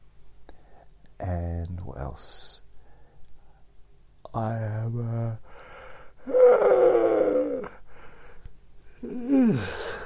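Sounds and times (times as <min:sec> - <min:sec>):
speech: 0:01.2 - 0:02.6, 0:04.4 - 0:05.5
person yawning with a groaning tone: 0:06.2 - 0:07.9, 0:09.0 - 0:10.0.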